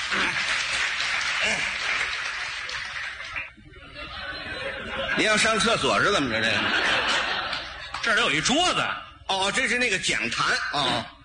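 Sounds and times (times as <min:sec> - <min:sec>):
audience clapping: 0:00.0 - 0:03.6
laughter: 0:01.3 - 0:08.2
speech: 0:05.2 - 0:06.8, 0:08.0 - 0:11.2.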